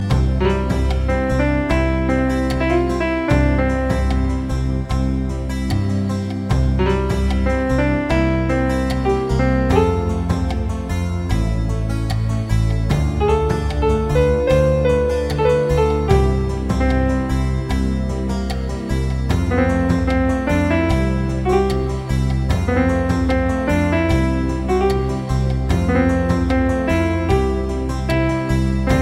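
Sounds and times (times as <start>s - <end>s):
elegant classical piano music: 0.0s - 29.0s.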